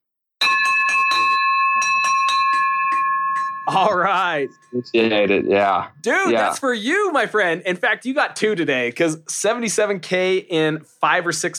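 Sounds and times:
victory bell ringing with bright metallic clangs: 0.4 - 4.8
speech: 3.7 - 11.5.

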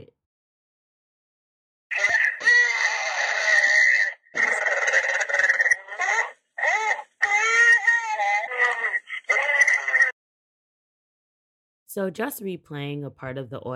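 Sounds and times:
distressed wailing cries on a voicemail recording: 1.9 - 10.2
speech: 12.0 - 13.7.

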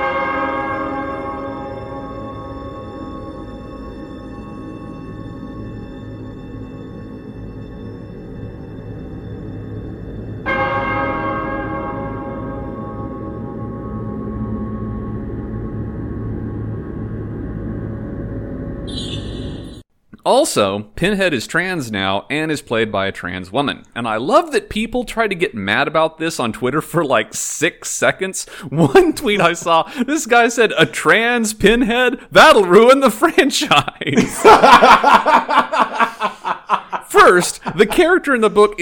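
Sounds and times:
deep ominous bell tolling: 0.0 - 19.8
low rumbling bed: 0.0 - 19.8
speech: 20.3 - 36.1, 37.1 - 38.8
laughter: 28.7 - 31.0, 33.6 - 38.8.

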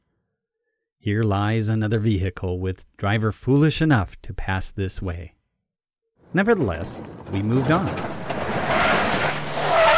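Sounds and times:
speech: 1.0 - 5.4, 6.3 - 8.2
car tires screeching under hard braking: 7.0 - 9.9.

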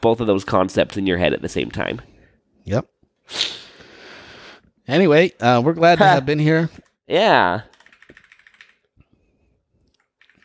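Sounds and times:
speech: 0.0 - 3.6, 4.9 - 7.7
typing on a computer keyboard: 7.7 - 8.9, 9.9 - 10.4.

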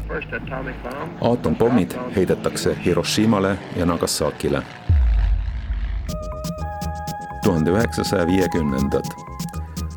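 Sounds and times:
heavy bomber aircraft engines droning: 0.0 - 8.5
speech: 0.1 - 5.1, 6.1 - 6.3, 7.4 - 9.3
sharp percussive bursts: 5.0 - 9.9.

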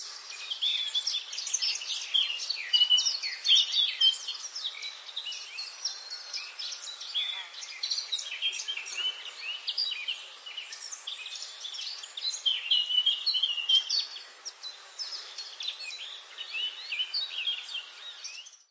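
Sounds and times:
faint insect-like hum: 0.0 - 18.6
dense chorus of high twittering birdsong in a forest: 0.0 - 18.7.

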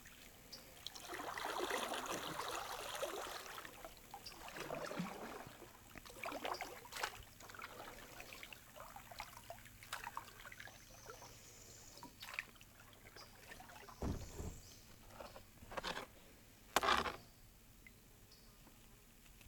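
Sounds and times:
kayak paddle dipping and pulling through water: 0.0 - 18.0
water splashing: 0.8 - 11.2
water trickling and sloshing: 0.8 - 11.2, 12.0 - 16.0.

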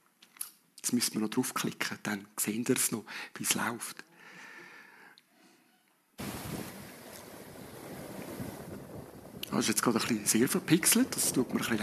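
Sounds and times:
speech: 0.8 - 4.1, 9.6 - 11.8
hiss: 6.2 - 8.6
ocean waves washing onto a sandy beach: 6.2 - 11.8.

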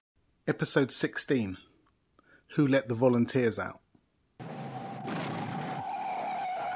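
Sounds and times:
speech: 0.6 - 1.7, 2.5 - 3.8
car tyres screeching and skidding across the road: 4.4 - 6.7.

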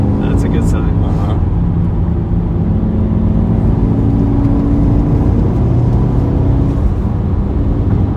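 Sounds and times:
car pulling out and driving straight, engine droning: 0.0 - 8.1
low road rumble: 0.0 - 8.1.

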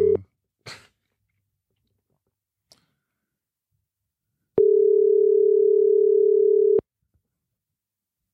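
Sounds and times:
telephone ringback tone on an outgoing call: 4.6 - 6.8.

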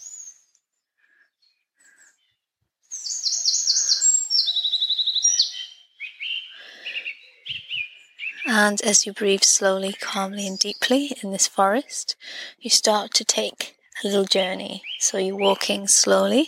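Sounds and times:
songbirds singing in a forest: 0.0 - 16.4
speech: 8.5 - 16.4.

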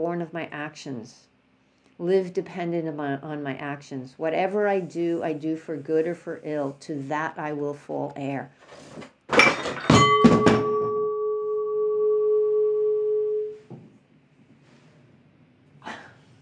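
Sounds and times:
speech: 0.0 - 1.3, 2.0 - 9.1
candle knocked off a shelf by a cat, falling and clattering: 9.3 - 10.9
long metallic ringing tone: 9.9 - 13.6.

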